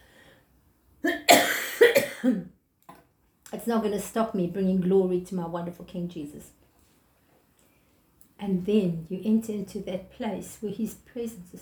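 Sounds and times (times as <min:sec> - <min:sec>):
person coughing harshly: 0:01.0 - 0:02.5
speech: 0:02.2 - 0:02.6, 0:03.5 - 0:06.6, 0:08.4 - 0:11.6.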